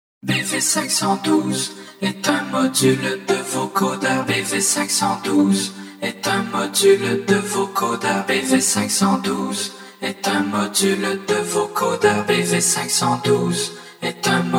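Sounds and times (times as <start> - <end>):
vocoder voice: 0.2 - 14.5.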